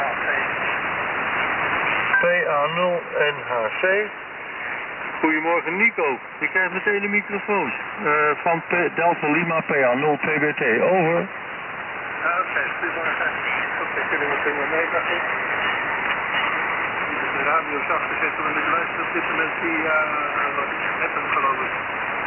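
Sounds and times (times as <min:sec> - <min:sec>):
amateur radio static and interference hiss: 0:00.0 - 0:22.2
speech: 0:02.2 - 0:04.2, 0:05.2 - 0:11.4, 0:12.2 - 0:15.5, 0:17.4 - 0:22.1.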